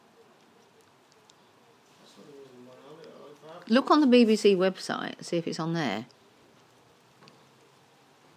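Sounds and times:
soft steady rain falling outside: 0.0 - 8.3
sharp rain patter: 1.9 - 8.3
speech: 3.5 - 6.2.

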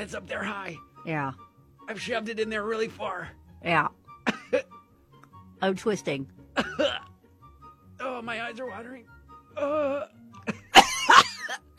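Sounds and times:
speech: 0.0 - 4.4, 5.6 - 7.1, 8.0 - 10.2
person coughing during a nasal swab: 4.2 - 4.7, 6.6 - 7.1, 9.8 - 11.7
person groaning: 9.6 - 10.2.

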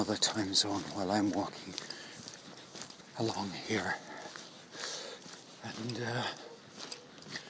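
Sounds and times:
speech: 0.0 - 1.9, 3.2 - 4.1, 5.6 - 6.4
steady outdoor hiss: 0.0 - 7.4
dog barking in the distance: 6.2 - 7.3.

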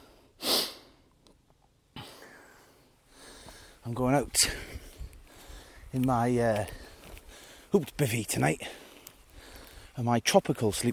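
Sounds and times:
heavy panting from exertion while walking uphill: 2.0 - 6.0, 6.6 - 7.8, 8.6 - 10.0
speech: 3.9 - 4.8, 6.0 - 6.8, 7.7 - 8.8, 10.0 - 10.9.

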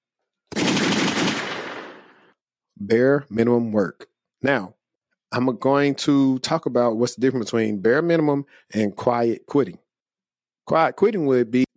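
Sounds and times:
rapid gunshot sound effect: 0.5 - 2.3
speech: 2.8 - 9.8, 10.7 - 11.7.

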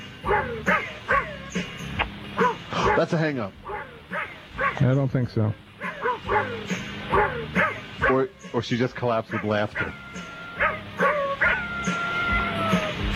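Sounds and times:
dogs barking and yipping in a rhythmic tuneful pattern on a recording: 0.2 - 1.7, 2.4 - 5.0, 5.8 - 8.4, 9.2 - 13.0
speech: 3.0 - 3.7, 4.8 - 10.2.

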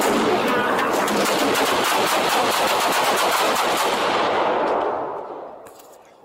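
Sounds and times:
automatic gunfire in police body-camera footage: 0.0 - 5.1.

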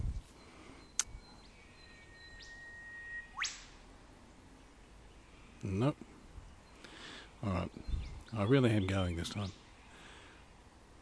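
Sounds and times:
whipbird call with sustained whistle and whip-crack: 2.4 - 3.8
speech: 5.6 - 6.1, 7.4 - 9.6.

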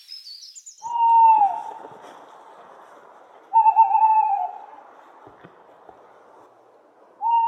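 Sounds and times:
tawny owl high sharp call: 0.0 - 1.8, 3.5 - 4.6
tawny owl wavering mid-pitched hoots: 0.0 - 1.8, 3.5 - 4.8, 7.2 - 7.4.

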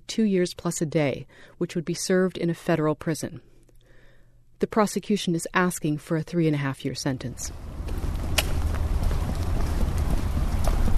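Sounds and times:
speech: 0.2 - 3.5, 4.6 - 7.7
wet rain mixed with snow falling outside a courthouse: 7.5 - 10.9.

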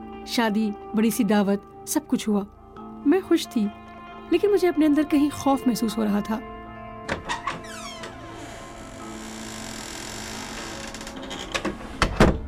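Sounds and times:
speech: 0.2 - 6.5
door shutting with a solid thunk: 7.1 - 12.4.

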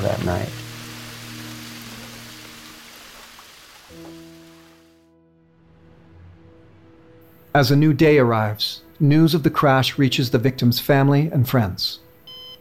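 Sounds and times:
speech: 0.0 - 0.6, 7.6 - 12.0
steady rain falling: 0.0 - 5.0.

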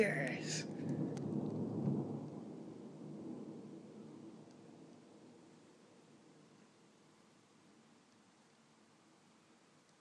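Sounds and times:
speech: 0.0 - 0.8
long low rumble of thunder in Scotland: 0.0 - 7.3
steady hiss of rain: 0.0 - 9.9.

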